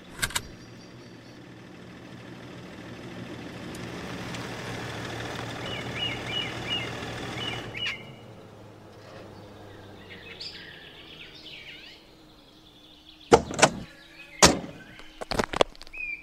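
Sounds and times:
car engine droning with a rough rumble: 0.0s - 16.0s
faint bird chirps: 5.6s - 8.4s, 9.0s - 16.2s.

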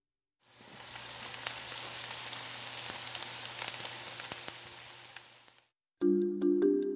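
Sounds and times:
food frying in hot oil: 0.4s - 5.8s.

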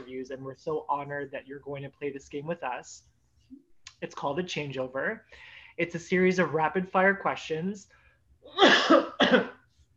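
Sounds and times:
speech: 0.2s - 9.6s
person coughing harshly: 8.5s - 9.6s.

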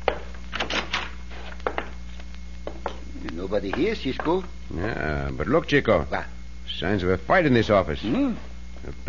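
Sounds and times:
door creaking open: 0.5s - 1.2s
speech: 3.4s - 9.0s.

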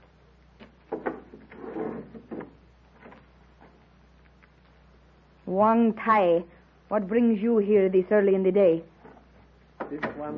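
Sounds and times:
wooden door dragging scrape: 0.9s - 3.2s
speech: 5.5s - 8.9s, 9.9s - 10.3s
wooden door soft thud as it settles: 9.8s - 10.3s.

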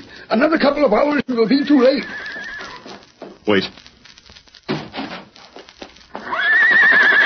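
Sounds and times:
speech: 0.3s - 2.4s, 3.4s - 3.8s
hooves clattering: 1.3s - 7.2s
horse whinnying: 1.6s - 2.9s, 6.2s - 7.2s.

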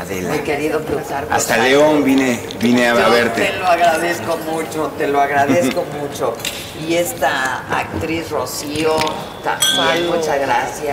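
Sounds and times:
speech: 0.0s - 10.9s
laughter: 5.3s - 6.1s
glasses clinking in a toast: 8.8s - 10.9s.

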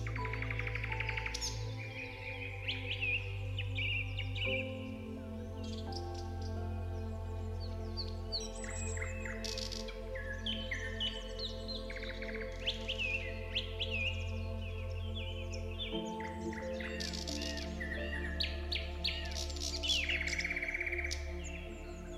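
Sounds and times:
bird chirps and trills in a forest: 0.0s - 22.1s
soft relaxing background music with sustained low tones: 0.0s - 22.1s.

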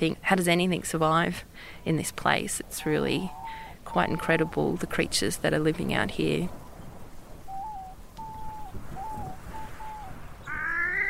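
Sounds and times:
speech: 0.0s - 6.6s
soft hiss: 0.0s - 11.0s
wood duck whistling outdoors: 7.6s - 11.0s
wood duck rising squeal: 10.5s - 11.0s.

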